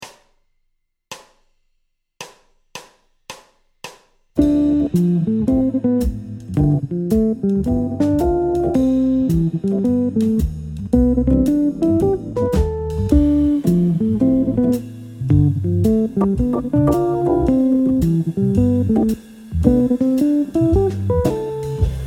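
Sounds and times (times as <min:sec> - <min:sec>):
jazz guitar playing a ii V7 I major seventh chord cadence: 0:04.4 - 0:21.9.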